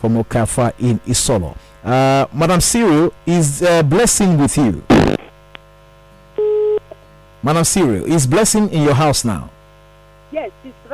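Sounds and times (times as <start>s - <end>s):
speech: 0.0s - 5.2s, 7.4s - 9.6s, 10.3s - 10.9s
low telephone line hum: 0.0s - 10.9s
electronic telephone busy tone on a dropped call: 6.4s - 7.0s.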